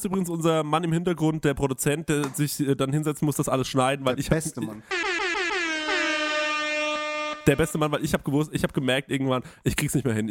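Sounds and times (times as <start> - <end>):
speech: 0.0 - 5.3, 7.4 - 10.2
harmonically rich siren effect: 4.9 - 7.8.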